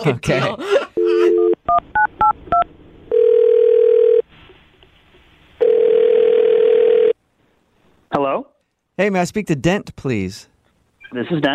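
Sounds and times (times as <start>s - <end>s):
speech: 0.0s - 0.8s, 8.3s - 10.5s, 11.1s - 11.5s
telephone ringing tones: 1.0s - 4.2s, 5.6s - 7.2s.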